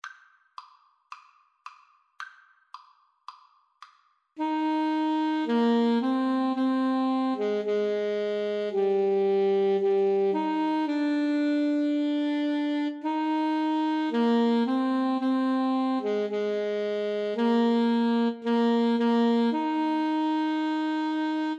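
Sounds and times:
clarinet in a duet: 4.4s - 21.5s
saxophone in a duet: 4.4s - 21.5s.

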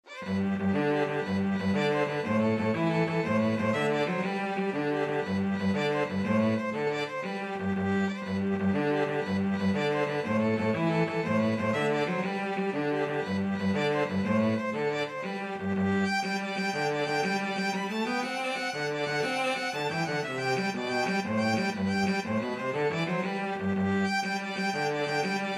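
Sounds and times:
Irish jig medley on violin: 0.0s - 25.5s
cello in a jig duet: 0.0s - 25.5s.

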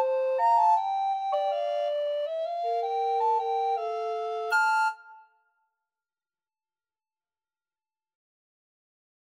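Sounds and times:
recorder trio playing a traditional Jamaican tune: 0.2s - 5.2s.

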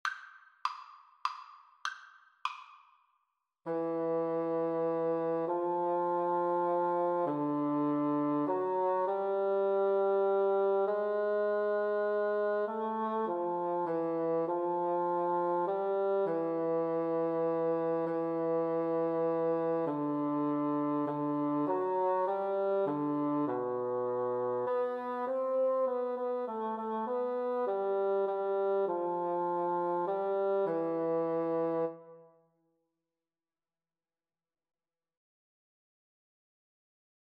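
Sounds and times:
bassoon duet: 3.7s - 32.4s.

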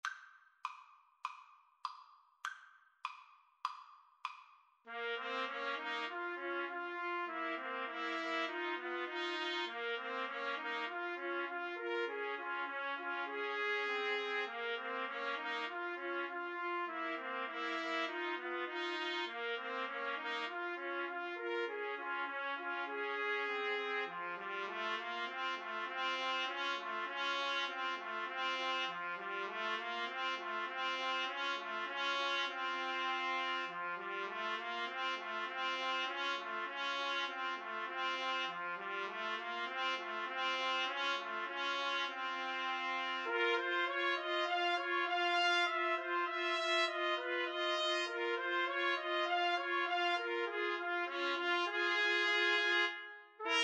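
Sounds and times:
trombone: 4.9s - 53.6s
two trumpets: 4.9s - 53.6s.

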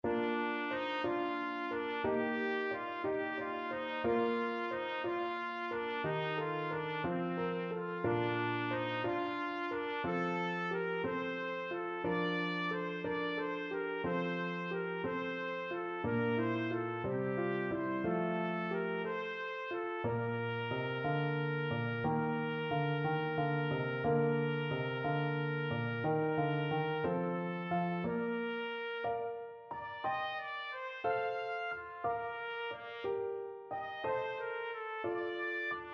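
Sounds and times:
trumpet playing pastorale: 0.0s - 35.9s.

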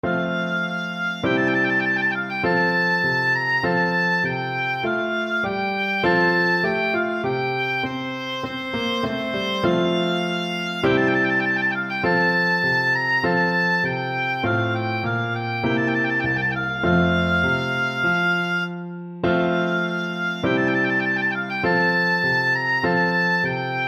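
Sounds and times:
oboe playing a trumpet voluntary: 0.0s - 23.8s.

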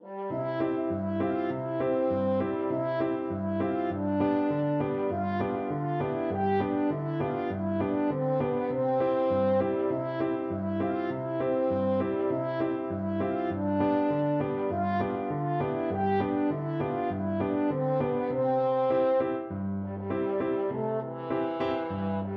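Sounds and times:
french horn: 0.0s - 22.3s.

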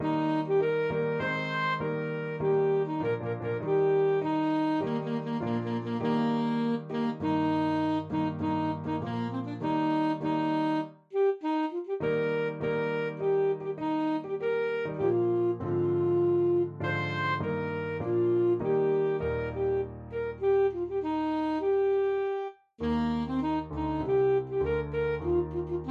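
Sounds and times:
saxophone playing an anthem: 0.0s - 25.8s.

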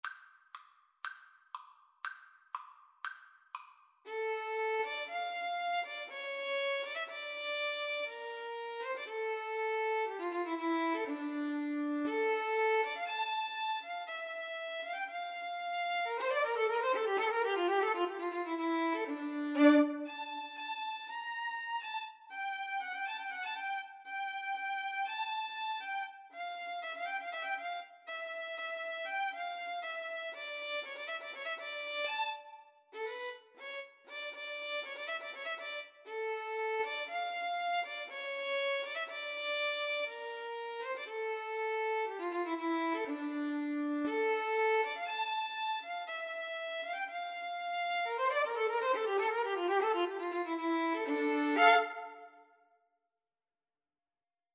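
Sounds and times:
violin in a violin and bass duet: 4.1s - 52.6s.

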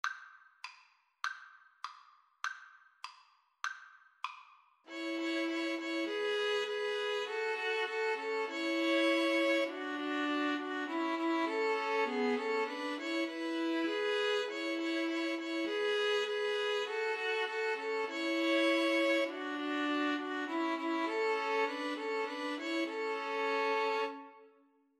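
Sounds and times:
string trio playing: 4.9s - 24.5s.

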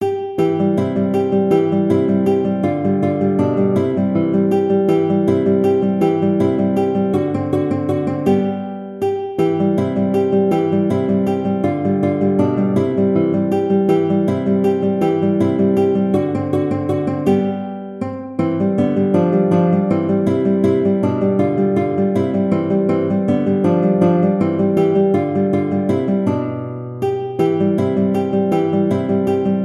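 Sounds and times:
guitar playing a waltz: 0.0s - 29.6s.

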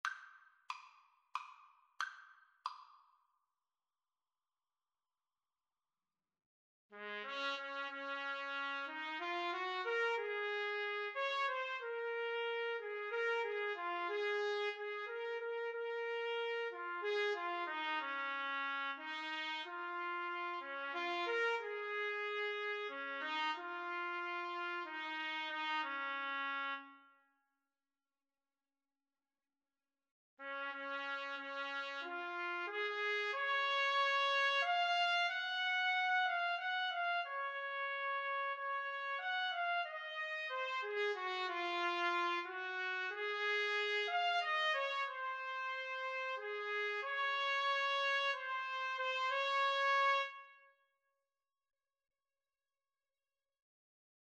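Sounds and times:
trumpet duet: 7.0s - 27.1s, 30.4s - 50.7s.

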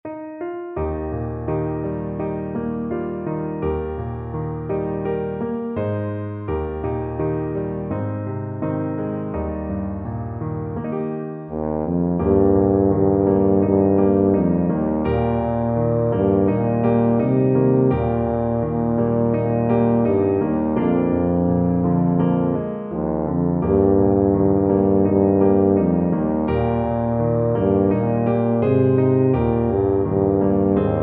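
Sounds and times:
tuba melody: 0.8s - 31.0s.

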